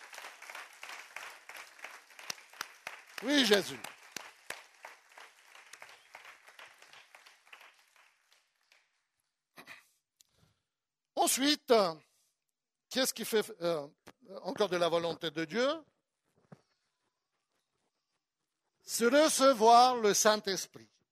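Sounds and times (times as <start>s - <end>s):
crowd applauding: 0.0s - 9.1s
speech: 3.2s - 3.9s, 11.4s - 12.1s, 12.9s - 15.9s, 18.9s - 21.0s.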